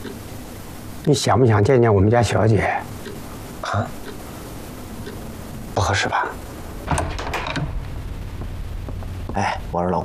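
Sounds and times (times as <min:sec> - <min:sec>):
steady hiss: 0:00.0 - 0:10.0
speech: 0:01.1 - 0:02.9, 0:03.7 - 0:04.0, 0:05.8 - 0:07.0, 0:09.4 - 0:10.0
door opening as someone walks into a room: 0:06.7 - 0:08.4.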